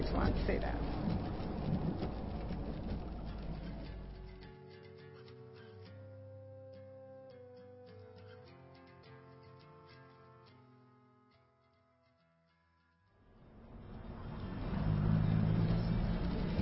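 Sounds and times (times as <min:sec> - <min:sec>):
car driving through rain: 0:00.0 - 0:04.2, 0:13.4 - 0:16.6
speech: 0:00.5 - 0:01.0.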